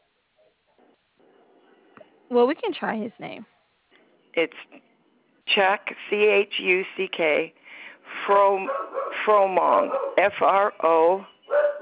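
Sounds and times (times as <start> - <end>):
speech: 2.3 - 3.6, 4.4 - 4.9, 5.5 - 7.6, 8.3 - 11.3
female dog barking: 8.7 - 10.2, 11.5 - 11.8.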